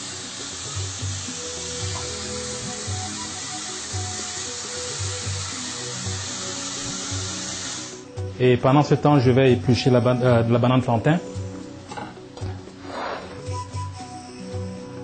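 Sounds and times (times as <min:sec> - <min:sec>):
sauce sizzling in a pan while stirred: 0:00.0 - 0:08.3
speech: 0:08.4 - 0:11.4.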